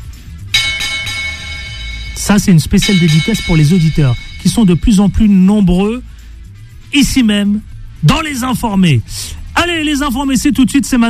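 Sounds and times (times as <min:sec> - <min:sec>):
double bell chime sound effect: 0:00.6 - 0:05.8
low hum: 0:00.6 - 0:05.8
speech: 0:02.2 - 0:06.2, 0:06.9 - 0:11.0.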